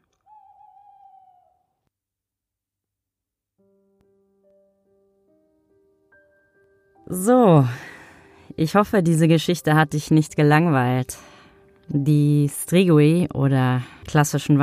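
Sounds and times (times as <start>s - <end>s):
long-eared owl screeching at night: 0.2s - 1.8s
speech: 7.1s - 7.9s, 8.6s - 11.3s, 11.9s - 14.6s.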